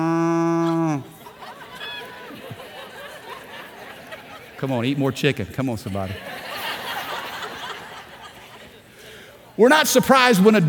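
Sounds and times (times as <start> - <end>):
person imitating a cow mooing: 0.0 - 1.2
crowd murmuring: 0.0 - 4.7
laughter: 0.0 - 8.9
speech: 4.6 - 6.5, 9.6 - 10.6.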